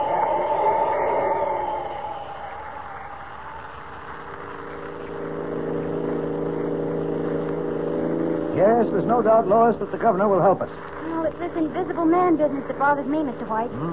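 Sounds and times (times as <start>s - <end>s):
car engine droning while driving along a road: 0.0s - 11.0s
speech: 8.8s - 13.9s.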